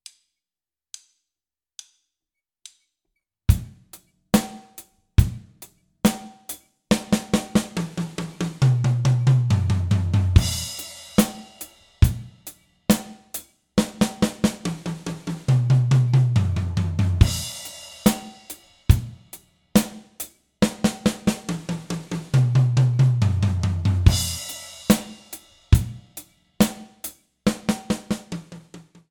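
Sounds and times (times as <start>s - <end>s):
one-bar drum fills: 6.9s - 13.2s, 13.8s - 20.0s, 20.6s - 29.0s.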